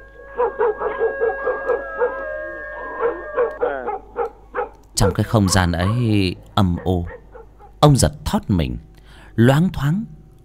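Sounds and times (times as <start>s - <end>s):
village dogs howling eerily together: 0.0s - 7.8s
speech: 5.0s - 7.2s, 7.8s - 10.2s.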